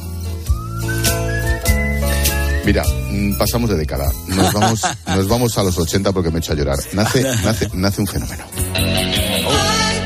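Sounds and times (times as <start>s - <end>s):
musical backing: 0.0s - 10.0s
whistled melody: 0.3s - 4.0s
speech: 2.7s - 9.2s
laughter: 4.3s - 5.8s, 6.8s - 8.5s.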